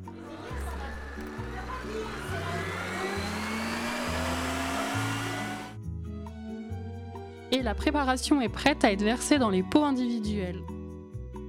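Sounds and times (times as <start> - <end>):
electric blender mixing a cosmetic preparation: 0.0 - 5.8
low music: 0.0 - 10.6
speech: 7.5 - 10.7.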